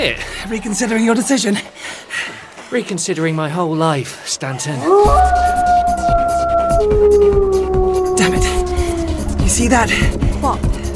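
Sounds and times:
speech: 0.0 - 1.8, 2.7 - 5.7, 9.6 - 10.7
wolves howling: 4.6 - 10.9
low rumbling background: 5.1 - 10.9.

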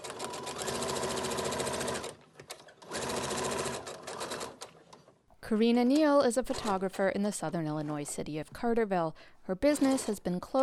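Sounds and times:
sewing machine stitching cloth masks: 0.0 - 4.7
speech: 5.5 - 10.6.

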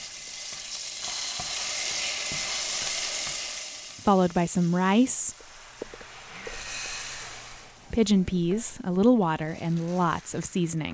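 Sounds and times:
frozen sofrito cube sizzling in a pan with sautéed garlic: 0.0 - 8.0
speech: 4.0 - 5.4, 8.0 - 10.9.

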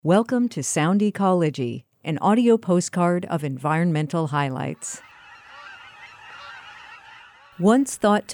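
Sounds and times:
speech: 0.0 - 5.1, 7.6 - 8.3
Aleutian cackling geese honking in a dense flock chorus: 4.8 - 8.2.

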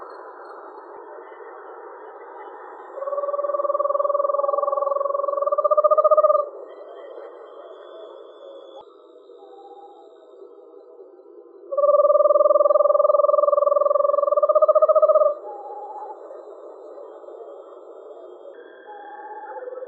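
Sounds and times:
Eastern screech owl trilling: 3.0 - 6.5, 11.7 - 16.3.

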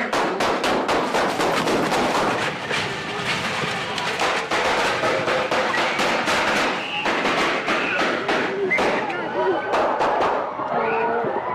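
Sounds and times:
rapid sharp gunshots from a gunfight: 0.1 - 10.5
loud chaotic crowd with people shouting at a birthday gathering: 2.6 - 11.5.

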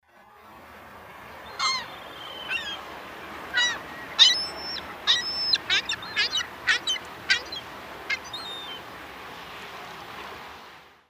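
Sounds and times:
ring-billed gull: 1.5 - 2.8, 3.5 - 8.8.

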